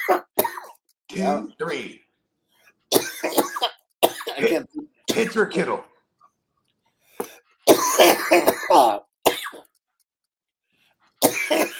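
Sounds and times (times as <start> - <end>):
person coughing and clearing their throat: 0.0 - 0.8, 2.9 - 5.4, 7.7 - 9.7, 11.2 - 11.7
speech: 1.2 - 2.0, 4.4 - 5.9, 7.9 - 9.1.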